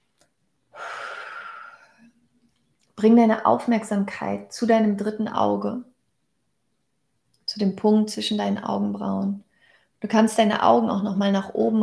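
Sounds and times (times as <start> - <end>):
deep breath during a guided meditation: 0.7 - 2.1, 9.5 - 10.0
speech: 3.0 - 5.9, 7.6 - 11.8.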